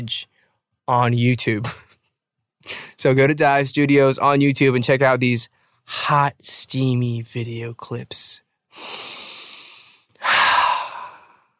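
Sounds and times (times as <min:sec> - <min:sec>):
speech: 0:00.0 - 0:01.8, 0:02.6 - 0:09.2
person inhaling steam from a humidifier: 0:08.8 - 0:11.5.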